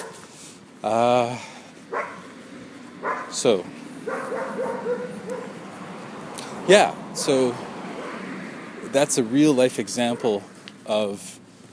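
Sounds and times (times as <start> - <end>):
dog barking: 0.0 - 0.2, 1.9 - 2.3, 3.0 - 3.4, 4.0 - 5.6, 8.0 - 8.3, 10.1 - 10.4
speech: 0.8 - 2.1, 3.3 - 5.5, 6.7 - 7.7, 8.9 - 11.4
dog yipping: 1.9 - 2.3, 3.0 - 3.4, 4.0 - 5.6, 10.1 - 10.4.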